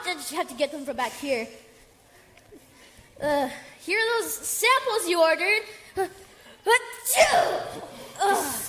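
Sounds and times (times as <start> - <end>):
speech: 0.1 - 1.7, 2.5 - 8.6
loud sneeze: 7.1 - 8.6.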